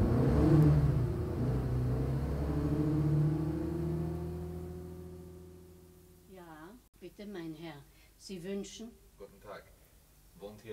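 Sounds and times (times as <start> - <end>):
taxi engine rumbling while driving off: 0.0 - 6.3
speech: 7.2 - 9.7, 10.4 - 10.7.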